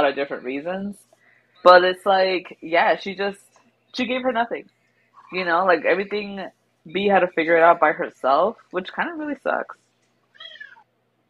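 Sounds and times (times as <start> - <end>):
speech: 0.0 - 9.8
quiet room hum: 0.0 - 11.2
cat meowing: 10.3 - 10.9.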